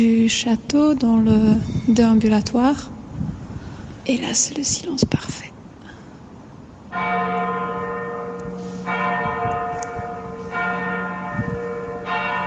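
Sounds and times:
speech: 0.0s - 3.0s, 4.0s - 5.5s
church bells ringing: 6.9s - 12.4s.

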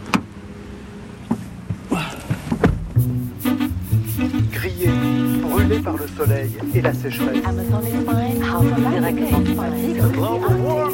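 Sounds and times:
car door shutting as someone climbs into a car: 0.0s - 0.4s, 1.2s - 3.2s
steady pulsing tonal sound: 3.0s - 10.9s
speech: 5.8s - 10.9s.

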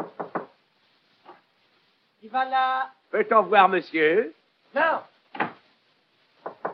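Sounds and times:
knocking on a door: 0.0s - 0.6s, 6.4s - 6.7s
speech: 2.3s - 5.1s.

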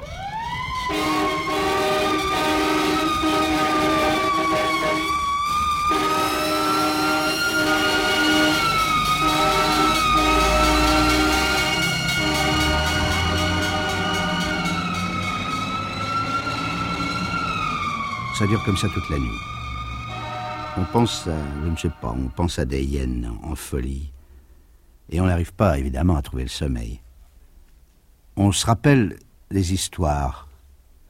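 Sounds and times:
several police sirens wailing: 0.0s - 22.6s
low traffic rumble: 0.0s - 31.0s
speech: 18.4s - 19.6s, 20.8s - 24.2s, 25.1s - 27.0s, 28.4s - 30.5s.

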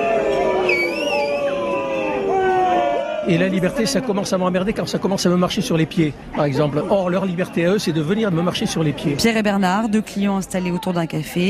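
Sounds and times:
café customers booing at protesters outdoors: 0.0s - 4.2s
café customers whistling shrilly at protesters: 0.6s - 2.1s
speech: 3.3s - 11.4s.

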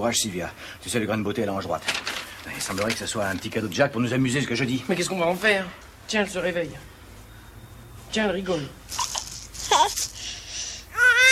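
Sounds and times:
speech: 0.0s - 7.0s, 8.1s - 9.0s
hiss: 0.0s - 11.2s
baby girl crying: 9.6s - 10.1s, 10.9s - 11.2s.

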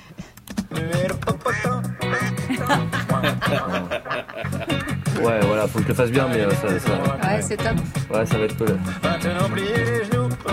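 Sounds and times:
speech: 0.1s - 1.1s, 2.5s - 10.5s
nasal duck quacks heavily compressed and washed in reverb: 1.4s - 5.0s
laughter: 2.1s - 6.6s.

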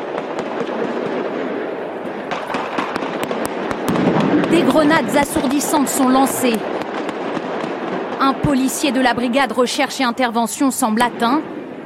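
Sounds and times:
sustained gunfire during a police assault on a hostage siege: 0.0s - 9.3s
speech: 4.6s - 6.8s, 8.2s - 11.6s.

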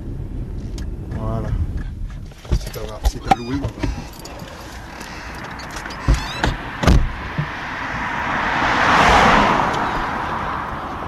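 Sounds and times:
sharp clunks and knocks: 1.8s - 8.1s
car passing in a commercial zone: 2.4s - 11.0s
speech: 2.8s - 3.9s.

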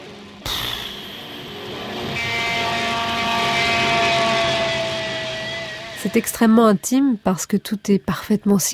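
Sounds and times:
propeller airplane engine droning with buzzing hum and tonal whine: 0.0s - 6.9s
speech: 6.0s - 8.7s.

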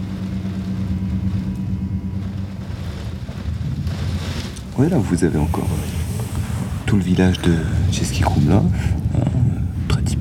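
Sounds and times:
low traffic rumble from cars on a road below: 0.0s - 10.1s
speech: 4.8s - 6.0s, 6.9s - 9.5s.

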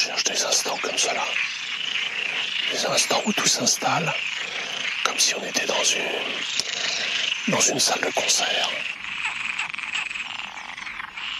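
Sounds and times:
speech: 0.0s - 1.6s, 2.6s - 4.5s, 5.1s - 6.8s, 7.4s - 9.0s
dense chorus of frogs croaking: 0.0s - 11.3s.

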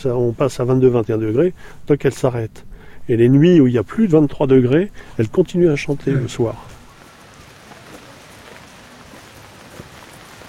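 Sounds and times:
speech: 0.0s - 6.7s
steady rain falling: 5.5s - 10.4s.

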